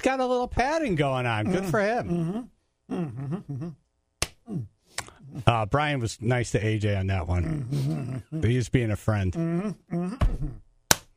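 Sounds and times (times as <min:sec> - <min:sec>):
speech: 0:00.0 - 0:03.8, 0:04.5 - 0:10.6
open-handed slap to the face: 0:10.2 - 0:11.1.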